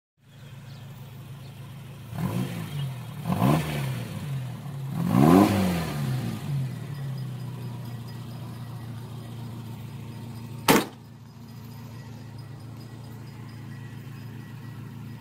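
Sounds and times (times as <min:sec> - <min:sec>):
Suzuki Carry engine: 0:00.2 - 0:15.1.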